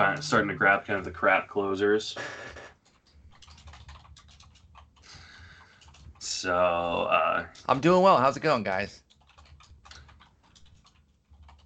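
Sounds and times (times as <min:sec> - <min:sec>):
speech: 0:00.0 - 0:02.6, 0:06.4 - 0:09.0
man typing furiously on a computer keyboard: 0:02.4 - 0:06.8, 0:07.5 - 0:11.6.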